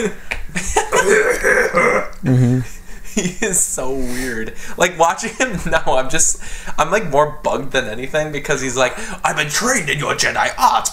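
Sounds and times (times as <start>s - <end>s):
speech: 0.0s - 10.9s
voice imitating raspy gravelly cough: 0.9s - 2.2s.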